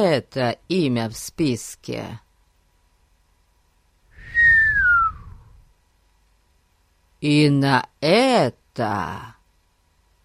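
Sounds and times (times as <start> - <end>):
speech: 0.0 - 2.2, 7.2 - 9.4
faint low rumble: 2.5 - 7.2
person giving a short downward-sliding whistle: 4.2 - 5.5.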